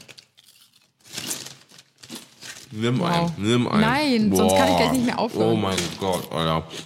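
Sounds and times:
bag of sweet barbecue potato chips torn open and crinkling: 0.0 - 3.0
speech: 2.7 - 6.8.

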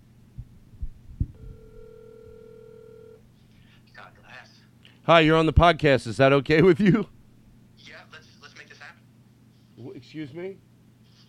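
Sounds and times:
soft low thumps: 0.3 - 1.6
outgoing phone call ringing tone: 1.4 - 3.2
speech: 4.0 - 7.2, 10.1 - 10.7.

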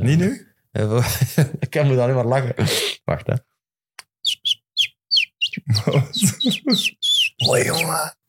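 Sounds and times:
speech: 0.0 - 3.5, 5.7 - 8.2
person whistling an imitation of a chirping bird: 4.4 - 8.0
laughter: 5.6 - 7.8.

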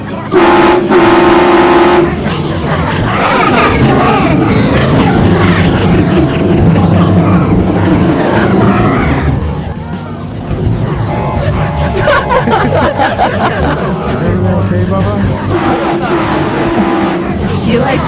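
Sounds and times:
indistinct voices: 0.0 - 18.0
steady rumble of rail noise: 0.0 - 18.0
loud train horn blasts: 0.3 - 2.2, 15.5 - 17.4
laughter: 1.8 - 9.7, 11.0 - 18.0.

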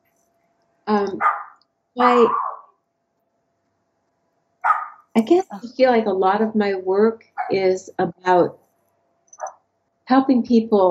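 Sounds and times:
speech: 0.9 - 1.4, 2.0 - 2.4, 5.2 - 8.6, 10.1 - 10.8
neighbor's dog barking: 1.2 - 2.7, 4.6 - 5.0.

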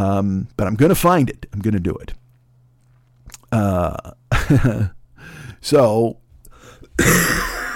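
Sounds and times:
speech: 0.0 - 2.2, 3.5 - 6.2, 7.0 - 7.5
dry cough: 7.0 - 7.7.

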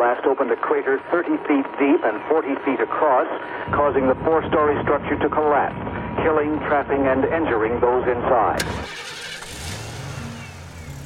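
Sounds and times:
speech: 0.2 - 9.0
speeding pickup truck engine revving: 8.4 - 11.0.

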